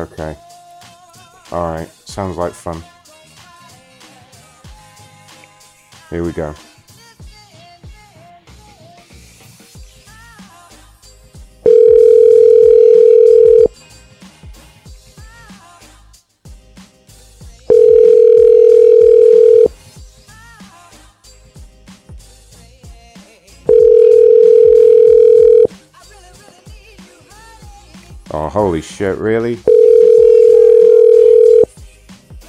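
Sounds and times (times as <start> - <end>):
speech: 0.0 - 0.5, 1.5 - 2.9, 6.1 - 6.7, 29.0 - 29.8
ringing tone of an unanswered telephone call: 11.7 - 13.7, 17.7 - 19.7, 23.7 - 25.7, 29.7 - 31.7.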